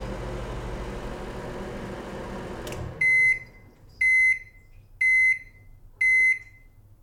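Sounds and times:
microwave stopping: 0.0s - 4.4s.

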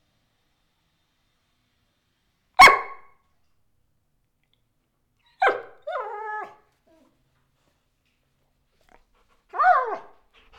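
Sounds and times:
dog whining: 5.2s - 7.1s, 8.8s - 10.5s.

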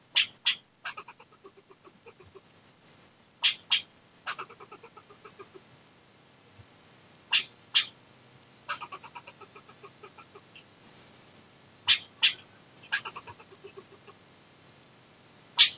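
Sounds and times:
squirrel chattering with sharp barks and clicks in Lincoln Nebraska: 0.1s - 2.6s, 3.4s - 5.7s, 7.3s - 7.9s, 8.7s - 10.7s, 11.8s - 14.2s, 15.6s - 15.7s.

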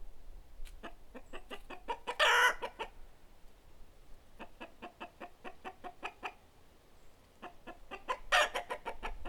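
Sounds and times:
chicken clucking: 0.8s - 3.0s, 4.4s - 6.4s, 7.4s - 9.2s.

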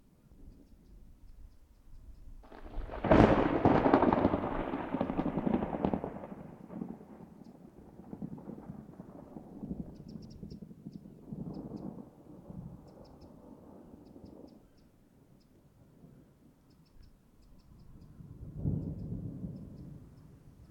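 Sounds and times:
thunderclap: 2.4s - 14.5s, 18.0s - 20.7s.

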